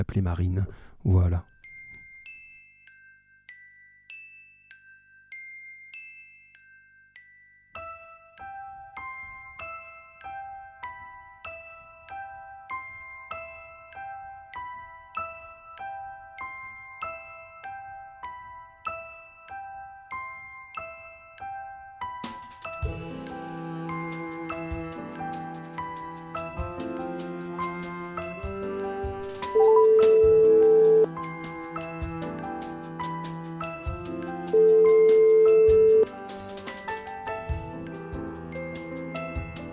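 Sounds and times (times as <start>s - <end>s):
speech: 0.0s - 1.5s
bright bell-like hold-music melody: 1.5s - 24.2s, 28.8s - 31.7s, 34.5s - 36.2s.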